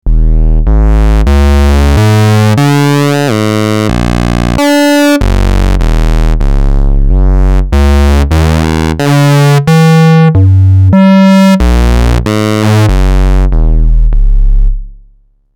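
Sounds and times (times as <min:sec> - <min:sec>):
modulated oscillator tone from a 261e oscillator: 0:00.0 - 0:14.8.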